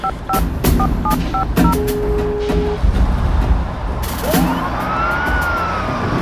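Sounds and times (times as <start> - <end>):
phone keypad beeps: 0.0 - 2.8
continuous rumble of street noise: 0.0 - 6.2.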